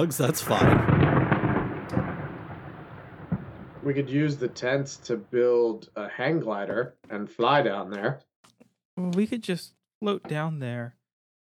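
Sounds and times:
speech: 0.0 - 1.2, 3.8 - 8.3, 9.0 - 11.0
crackle: 0.0 - 5.8
thunder from lightning striking a giant building: 0.0 - 6.6.

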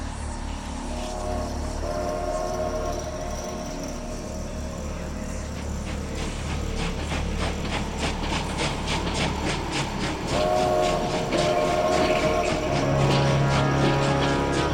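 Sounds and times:
train rumbling past with wheels clacking on rails: 0.1 - 14.7
sustained train horn tone: 0.9 - 5.5, 10.3 - 14.7.

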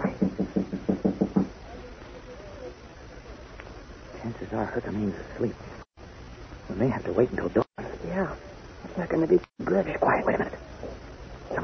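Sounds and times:
soft knocking on a bolted door: 0.0 - 1.6
speech: 4.5 - 5.8, 6.7 - 10.6.

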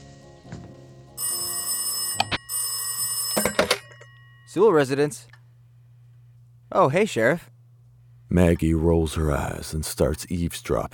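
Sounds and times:
telephone bell ringing with a harsh metallic trill: 1.2 - 4.6
speech: 4.5 - 5.4, 6.7 - 7.5, 8.3 - 10.9.

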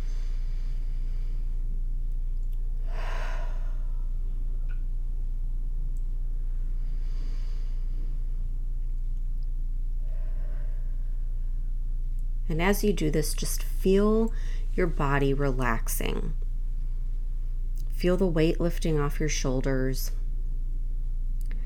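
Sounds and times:
deep breaths in through the nose and out through the mouth: 0.0 - 1.8, 2.8 - 4.8, 6.4 - 8.7, 9.9 - 11.9, 14.3 - 14.8
low steady hum: 0.0 - 21.6
speech: 12.5 - 16.4, 18.0 - 20.2.

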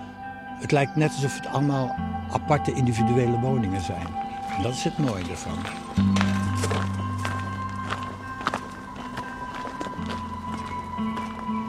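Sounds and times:
speech: 0.6 - 6.3
footsteps walking on a footpath: 4.0 - 11.6.

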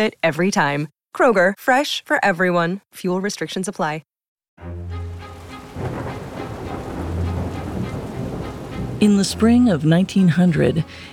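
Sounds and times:
speech: 0.0 - 4.9, 9.0 - 11.1
steady hissing rain: 5.0 - 11.1
deep rumbling thunder: 5.4 - 10.2.

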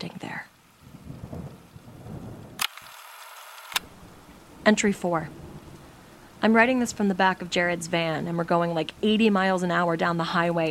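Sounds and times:
steady rain: 0.0 - 10.7
deep rolling thunder: 0.8 - 2.6, 3.8 - 7.1
sharp clicks: 2.6 - 3.9
speech: 4.7 - 5.4, 6.4 - 10.7.

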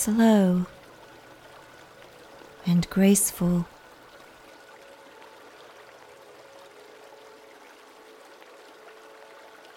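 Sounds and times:
speech: 0.0 - 0.8, 2.6 - 3.7
flowing river water: 0.0 - 9.7.

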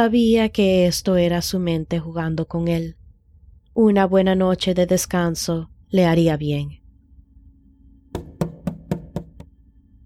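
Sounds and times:
speech: 0.0 - 3.0, 3.8 - 6.8
knocking on a wooden door: 8.1 - 9.5.

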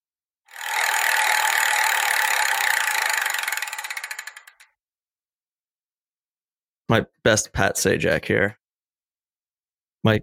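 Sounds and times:
prize wheel spinning: 0.5 - 4.8
speech: 6.9 - 8.6, 10.0 - 10.2.

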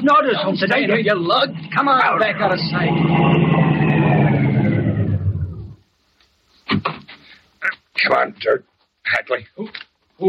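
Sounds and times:
speech: 0.0 - 3.8, 8.0 - 10.2
car engine roaring: 0.4 - 5.8.

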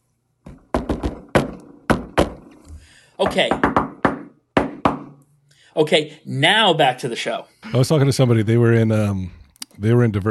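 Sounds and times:
rhythmic secret knock on a door: 0.5 - 2.5, 3.2 - 5.1
speech: 3.2 - 4.0, 5.8 - 10.2.

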